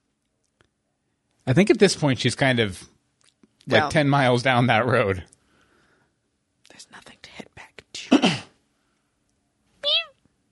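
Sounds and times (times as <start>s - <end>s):
speech: 1.5s - 3.0s, 3.7s - 5.3s
cat meowing: 9.8s - 10.2s.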